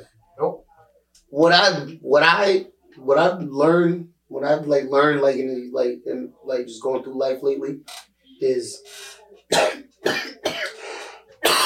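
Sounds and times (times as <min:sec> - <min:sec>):
speech: 0:01.4 - 0:10.4
person coughing: 0:09.5 - 0:11.6.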